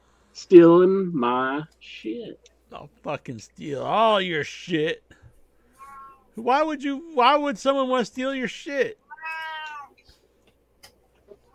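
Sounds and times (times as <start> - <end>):
speech: 0.4 - 5.1, 6.4 - 9.0
cat meowing: 5.8 - 6.3, 9.1 - 10.0.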